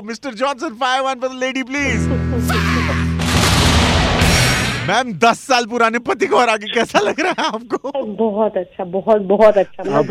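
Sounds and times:
speech: 0:00.0 - 0:03.0, 0:04.9 - 0:10.1
cannon fire blasts: 0:03.2 - 0:05.0
laughter: 0:06.6 - 0:08.0, 0:09.6 - 0:10.1.

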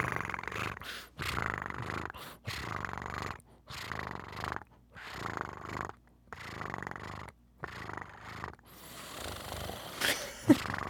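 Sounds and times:
person imitating a cat purr: 0:00.0 - 0:10.8.

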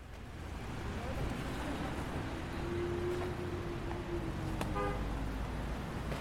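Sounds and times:
cars driving through a gateway arch into a refugee camp: 0:00.0 - 0:06.1
car horn honk: 0:04.7 - 0:05.1.

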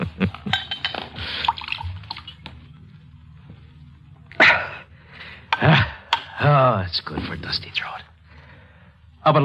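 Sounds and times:
low hum: 0:00.0 - 0:09.4
wine glugging and splashing as poured from a bottle: 0:01.2 - 0:02.4
speech: 0:09.2 - 0:09.4.

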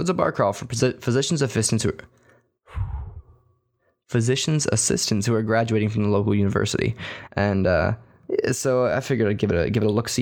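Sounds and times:
speech: 0:00.0 - 0:02.9, 0:04.1 - 0:10.2
long breathy yawn with low voiced groan: 0:02.7 - 0:03.4.

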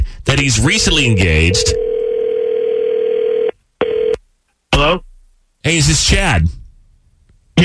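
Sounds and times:
speech: 0:00.3 - 0:01.9, 0:04.8 - 0:05.0, 0:05.6 - 0:06.6
telephone ringback tone on an outgoing call: 0:01.1 - 0:04.2.

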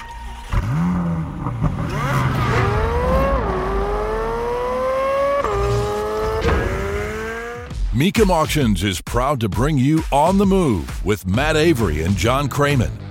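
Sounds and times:
Chevrolet race car engine screaming around a track: 0:00.4 - 0:07.7
speech: 0:08.0 - 0:13.0.

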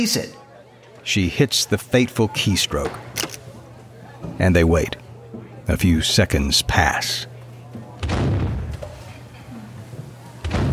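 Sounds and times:
speech: 0:00.0 - 0:00.4, 0:01.0 - 0:03.3, 0:04.3 - 0:05.0, 0:05.7 - 0:07.3
loud cannon blasts with rumbling decay: 0:08.0 - 0:08.8, 0:10.4 - 0:10.7.

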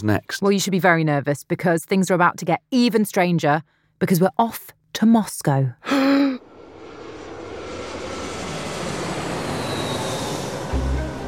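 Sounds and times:
speech: 0:00.0 - 0:06.2
airplane engine roar at Moscow Domodedovo Airport in Russia: 0:06.4 - 0:11.2
faint airplane engine whine: 0:06.4 - 0:11.2.

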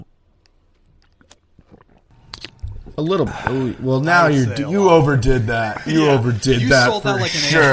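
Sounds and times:
person drinking water from a bottle: 0:00.7 - 0:03.9
speech: 0:03.0 - 0:07.7.

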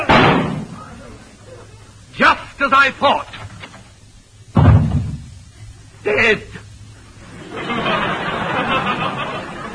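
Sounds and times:
door slamming shut: 0:00.1 - 0:00.7, 0:04.6 - 0:05.3
speech: 0:02.7 - 0:03.4, 0:06.1 - 0:06.6
laughter: 0:07.2 - 0:09.7.

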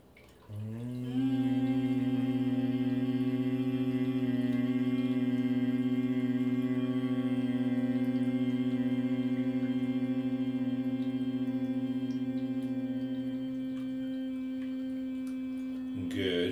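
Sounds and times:
person humming a low steady note as a meditation exercise: 0:00.5 - 0:16.4.

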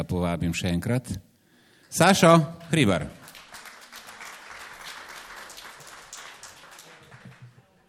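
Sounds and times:
speech: 0:00.0 - 0:01.3, 0:01.9 - 0:03.2
audience applause as a speaker is invited back on stage: 0:02.7 - 0:07.8.

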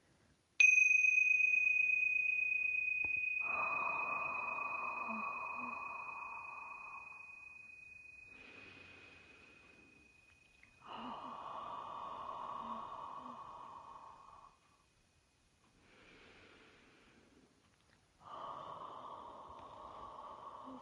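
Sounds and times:
tingsha bells ringing: 0:00.6 - 0:14.5
soft breathing: 0:02.3 - 0:15.0, 0:15.6 - 0:20.8.

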